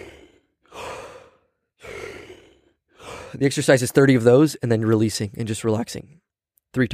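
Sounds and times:
huge deep breaths taken as a breathing exercise: 0:00.0 - 0:03.4
speech: 0:03.3 - 0:06.9.

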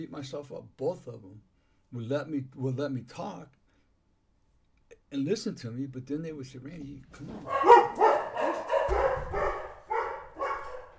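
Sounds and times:
speech: 0:00.0 - 0:03.6, 0:05.1 - 0:08.0
dogs barking inside a house: 0:07.4 - 0:10.9.

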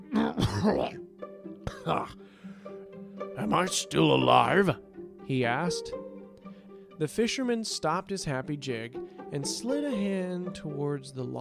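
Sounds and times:
man imitating a big man coughing up brackish seawater: 0:00.0 - 0:01.0, 0:01.6 - 0:02.2
speech: 0:00.4 - 0:01.0, 0:01.8 - 0:02.2, 0:03.5 - 0:06.0, 0:07.0 - 0:11.4.

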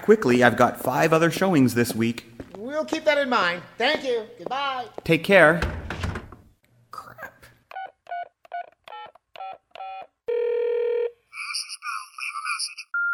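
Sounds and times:
speech: 0:00.0 - 0:05.8
steady telephone ringing tone: 0:07.8 - 0:13.1
warbling electronic trill of voicemail: 0:11.4 - 0:13.0.

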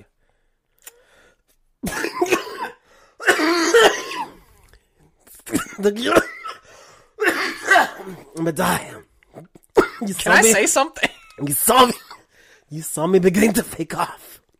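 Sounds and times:
harsh coughing fit with raspy throat-clearing: 0:01.8 - 0:04.5, 0:05.3 - 0:08.4, 0:09.5 - 0:12.3
speech: 0:05.8 - 0:06.3, 0:08.0 - 0:09.0, 0:10.0 - 0:12.0, 0:12.7 - 0:14.3.

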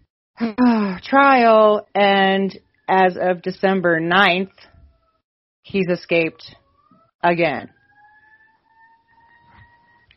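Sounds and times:
speech: 0:00.4 - 0:04.7, 0:05.6 - 0:06.6, 0:07.2 - 0:07.8
siren wailing down the street: 0:06.1 - 0:10.1.

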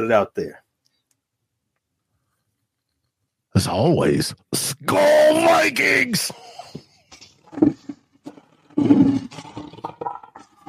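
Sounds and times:
speech: 0:00.0 - 0:00.6, 0:03.6 - 0:06.8, 0:07.5 - 0:07.9, 0:08.8 - 0:10.2
lion roaring and grunting: 0:08.6 - 0:10.6.

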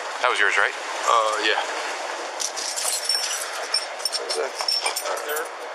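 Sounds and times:
speech: 0:00.2 - 0:01.8, 0:04.4 - 0:05.7
keys jingling on a key ring: 0:02.4 - 0:05.6.

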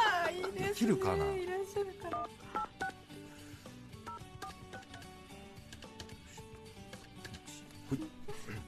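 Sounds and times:
speech: 0:00.8 - 0:02.8, 0:07.9 - 0:08.2
telephone keypad dialing tones: 0:02.1 - 0:03.0, 0:04.0 - 0:05.1.

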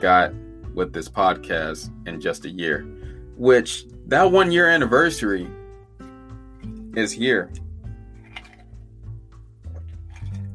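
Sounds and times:
speech: 0:00.0 - 0:05.6, 0:06.9 - 0:07.6
person drinking water with soft gulps and swallows: 0:08.2 - 0:08.8, 0:09.7 - 0:10.5.

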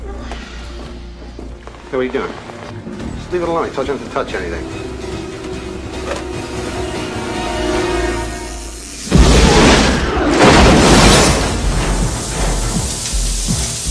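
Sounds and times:
speech: 0:01.9 - 0:02.5, 0:03.3 - 0:04.9
huge explosion with rumbling roar of debris: 0:09.1 - 0:13.1.

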